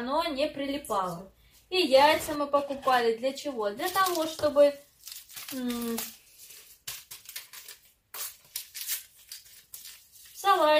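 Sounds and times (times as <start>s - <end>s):
speech: 0.0s - 4.9s, 5.5s - 6.2s, 10.4s - 10.7s
paper packets of vanilla sugar torn open: 3.8s - 10.7s.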